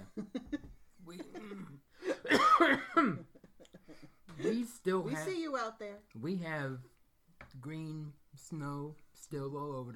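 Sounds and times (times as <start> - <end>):
man coughing: 1.2 - 3.4
speech: 4.9 - 6.9, 7.5 - 9.9.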